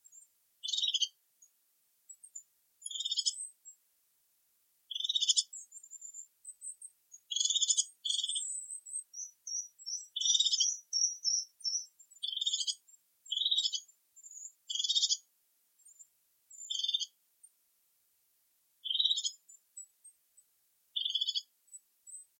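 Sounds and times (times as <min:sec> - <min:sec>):
crested tit calling: 0:00.6 - 0:01.2, 0:02.2 - 0:03.5, 0:04.9 - 0:06.6, 0:07.2 - 0:15.3, 0:16.5 - 0:17.2, 0:18.8 - 0:19.9, 0:21.0 - 0:21.5.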